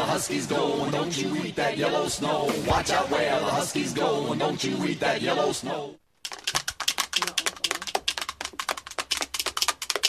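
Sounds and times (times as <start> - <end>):
speech: 0.2 - 6.0
two dice being rolled: 6.3 - 9.9.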